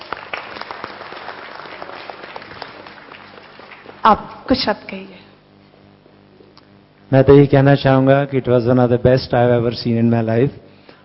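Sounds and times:
audience applause at a stage event: 0:00.0 - 0:04.2
speech: 0:04.0 - 0:05.2, 0:07.1 - 0:10.6.

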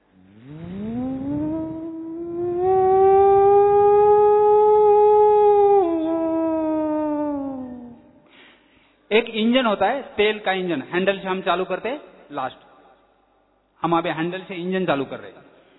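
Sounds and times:
factory siren wailing: 0:00.4 - 0:08.1
speech: 0:09.2 - 0:12.6, 0:13.8 - 0:15.4.

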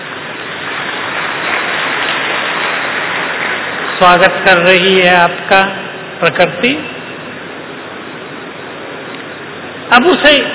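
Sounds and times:
rain falling: 0:00.0 - 0:05.4
speech: 0:04.0 - 0:07.0, 0:10.0 - 0:10.5.

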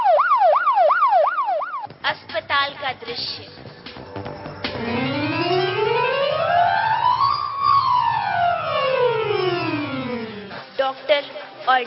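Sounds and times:
ambulance siren wailing in a hospital setting: 0:00.0 - 0:01.9, 0:04.8 - 0:10.5
speech: 0:02.1 - 0:03.6, 0:11.1 - 0:11.8.

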